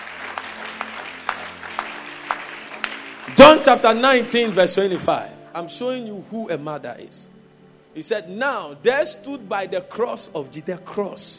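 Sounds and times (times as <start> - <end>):
audience applause: 0.0 - 5.2
sharp rhythmic claps: 0.0 - 5.2
speech: 3.4 - 7.3, 8.0 - 11.3.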